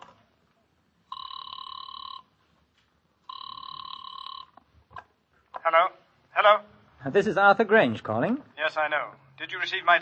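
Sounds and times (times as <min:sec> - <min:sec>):
telephone ringing with electronic trill: 0:01.1 - 0:02.4, 0:03.2 - 0:04.6
speech: 0:07.0 - 0:10.0.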